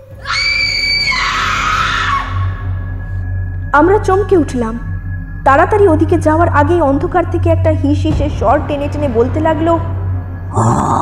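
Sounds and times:
woman's terrified scream in a horror drama: 0:00.2 - 0:02.6
speech: 0:03.7 - 0:04.9, 0:05.5 - 0:11.0.

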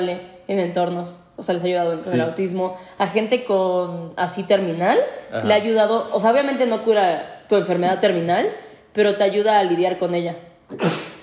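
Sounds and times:
speech: 0:00.0 - 0:11.1
person sneezing: 0:10.7 - 0:11.2.

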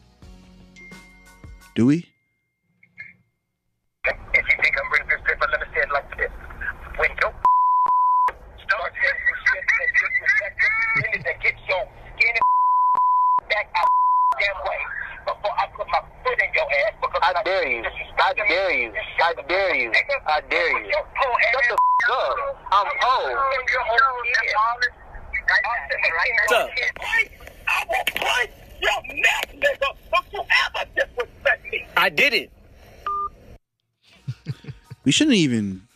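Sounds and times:
man talking over a tinny phone-quality line: 0:01.8 - 0:02.1, 0:04.0 - 0:07.5, 0:08.6 - 0:10.6, 0:13.4 - 0:32.5, 0:35.1 - 0:35.9
speech: 0:01.8 - 0:02.1, 0:35.1 - 0:35.9
steady high-pitched censor bleeps: 0:07.4 - 0:08.3, 0:12.4 - 0:14.4, 0:21.8 - 0:22.1
laughter: 0:11.0 - 0:11.4, 0:34.1 - 0:35.3.

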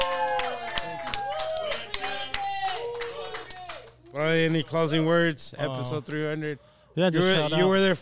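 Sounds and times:
excited voices cheering and whooping: 0:00.0 - 0:03.9
small group clapping: 0:00.0 - 0:04.9
speech: 0:04.2 - 0:07.9.

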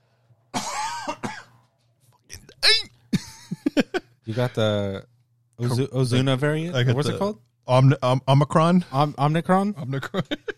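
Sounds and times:
person coughing: 0:00.6 - 0:01.6, 0:02.4 - 0:03.3
speech: 0:04.3 - 0:10.5.

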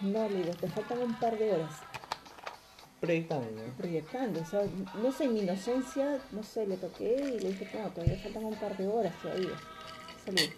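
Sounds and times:
speech: 0:00.0 - 0:02.0, 0:03.0 - 0:09.7, 0:10.3 - 0:10.5
glasses clinking in a toast: 0:09.2 - 0:10.5.

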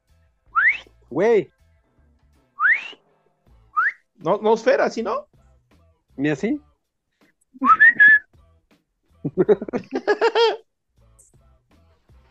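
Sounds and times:
person whistling: 0:00.6 - 0:00.9, 0:02.6 - 0:03.0, 0:03.8 - 0:04.1, 0:07.6 - 0:08.3
speech: 0:01.1 - 0:01.6, 0:04.2 - 0:05.3, 0:06.2 - 0:06.7, 0:07.6 - 0:07.9, 0:09.2 - 0:10.6
laughter: 0:09.3 - 0:10.6.

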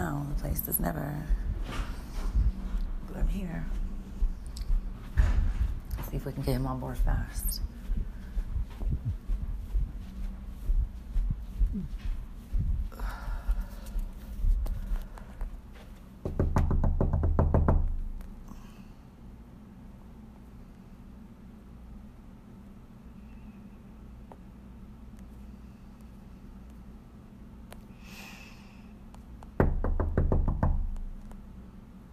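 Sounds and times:
low rumble: 0:00.0 - 0:32.1
speech: 0:00.6 - 0:01.8, 0:03.1 - 0:03.8, 0:06.1 - 0:07.7, 0:11.8 - 0:12.0
knocking on a door during a wellness check: 0:16.2 - 0:18.2, 0:29.6 - 0:31.1.

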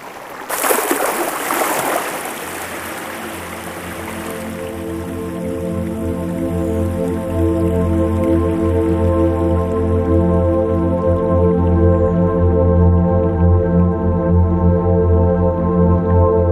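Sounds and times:
brief louder splash of water: 0:00.0 - 0:06.0
soft water drips: 0:00.0 - 0:11.3
slow river current flowing: 0:00.0 - 0:12.1
low sustained tonal hum: 0:02.2 - 0:16.5.

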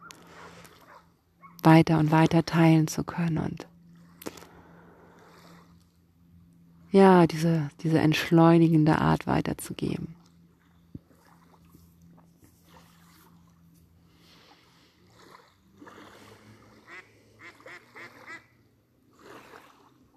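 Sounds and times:
low outdoor rumble by the water: 0:00.0 - 0:19.2
speech: 0:01.6 - 0:03.7, 0:06.9 - 0:10.2
duck quacking: 0:16.8 - 0:18.5.

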